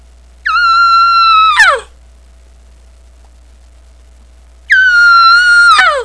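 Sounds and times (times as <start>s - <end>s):
long yelp: 0.4s - 1.9s, 4.7s - 6.0s.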